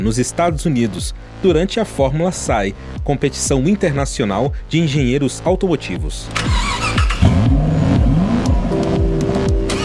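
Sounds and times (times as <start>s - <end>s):
speech: 0.0s - 7.1s
600 cc four-stroke engine of a student-built prototype race car revving: 6.4s - 9.8s.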